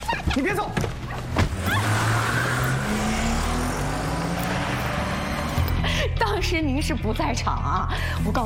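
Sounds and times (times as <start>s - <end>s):
speech: 0.2s - 1.8s, 6.3s - 8.4s
car engine revving and pulling away: 1.0s - 6.0s.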